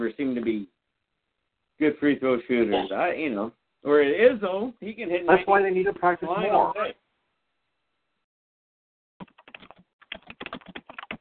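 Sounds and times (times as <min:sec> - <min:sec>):
speech: 0:00.0 - 0:00.8, 0:01.8 - 0:07.0
typing on a computer keyboard: 0:09.2 - 0:11.1.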